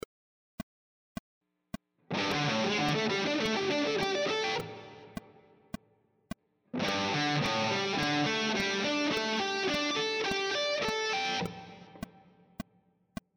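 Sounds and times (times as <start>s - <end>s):
guitar playing triad arpeggio sequences: 2.1s - 5.2s, 6.8s - 12.0s.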